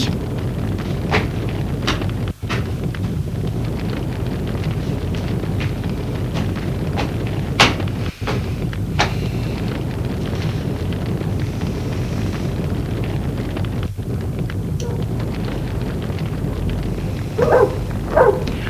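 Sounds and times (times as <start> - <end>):
dense rumbling noise: 0.0 - 18.6
dog barking in a courtyard: 14.8 - 15.2, 17.2 - 18.6.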